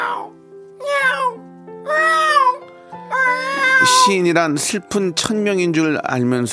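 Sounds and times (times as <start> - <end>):
cat meowing frantically in high-pitched wails: 0.0 - 4.2
speech: 3.9 - 6.5.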